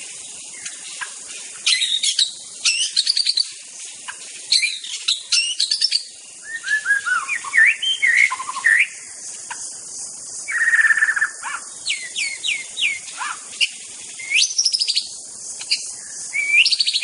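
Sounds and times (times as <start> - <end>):
high insect drone in a forest: 0.0 - 17.0
White-rumped shama whistled phrases in a forest: 4.6 - 8.9, 10.5 - 15.1, 15.7 - 17.0.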